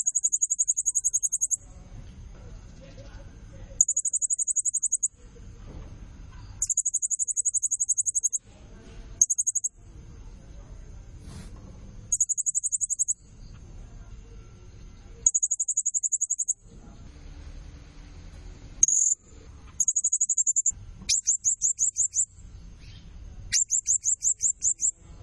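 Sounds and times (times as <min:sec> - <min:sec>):
blue-crowned hanging parrot high rapid pulsed calls: 0:00.0 - 0:01.6, 0:03.8 - 0:05.1, 0:06.6 - 0:08.4, 0:09.2 - 0:09.7, 0:12.1 - 0:13.2, 0:15.2 - 0:16.6, 0:18.8 - 0:19.2, 0:19.8 - 0:22.3, 0:23.5 - 0:24.9
low rumbling background noise: 0:00.0 - 0:25.2.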